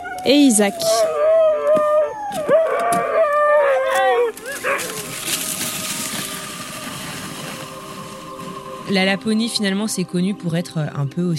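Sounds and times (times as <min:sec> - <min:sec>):
chorus of sled dogs howling and yelping before departure: 0:00.0 - 0:06.3
noisy bustling outdoor wash: 0:00.0 - 0:11.1
speech: 0:00.2 - 0:01.2, 0:08.9 - 0:11.3.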